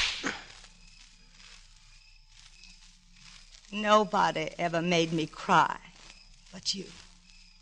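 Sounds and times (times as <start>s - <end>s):
fleshy smack: 0.0s - 0.4s
slap across the face: 0.0s - 0.4s
faint rustle: 0.0s - 7.5s
speech: 3.7s - 5.9s, 6.5s - 7.0s.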